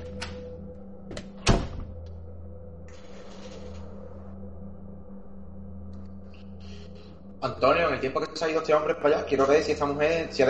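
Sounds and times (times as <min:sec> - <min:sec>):
door opening and closing: 0:00.0 - 0:02.2, 0:02.9 - 0:04.2
low steady hum: 0:00.0 - 0:10.4
speech: 0:07.4 - 0:10.4.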